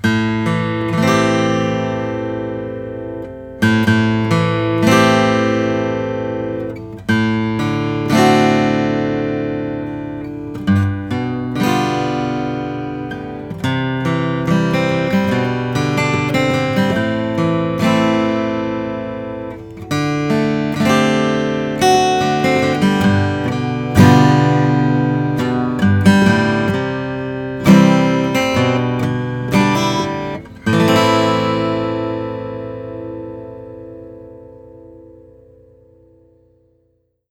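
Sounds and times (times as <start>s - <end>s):
custom OM Adirondack natural acoustic guitar: 0.0s - 37.2s.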